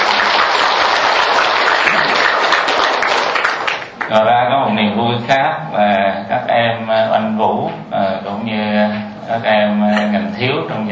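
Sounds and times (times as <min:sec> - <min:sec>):
Buddhist followers applauding at a temple ceremony: 0:00.0 - 0:04.1
speech: 0:04.1 - 0:10.9.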